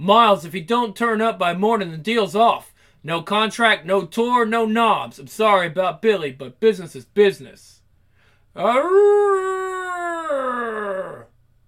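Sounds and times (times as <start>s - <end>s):
speech: 0.0s - 7.8s, 8.6s - 9.6s
wolf howling: 8.6s - 11.3s.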